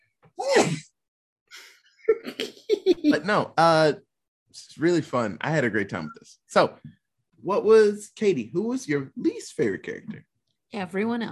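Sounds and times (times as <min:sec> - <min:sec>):
loud sneeze with a sharp rising gasp: 0:00.4 - 0:00.9
speech: 0:03.2 - 0:11.3.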